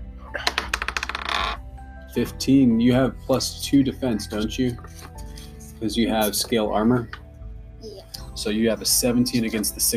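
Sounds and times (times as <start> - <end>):
dice clattering across a hard tabletop: 0.4 - 1.6
speech: 2.1 - 5.2, 5.8 - 7.2, 8.4 - 9.9.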